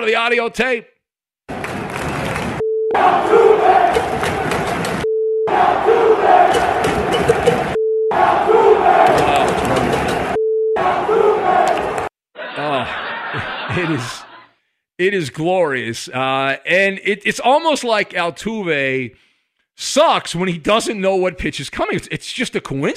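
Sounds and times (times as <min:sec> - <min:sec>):
speech: 0:00.0 - 0:00.9, 0:13.7 - 0:14.2, 0:15.0 - 0:22.9
huge crowd of baseball fans booing at Yankee Stadium: 0:01.5 - 0:14.5
huge crowd of baseball fans chanting at Yankee Stadium: 0:02.9 - 0:14.5
laughter: 0:12.4 - 0:14.6.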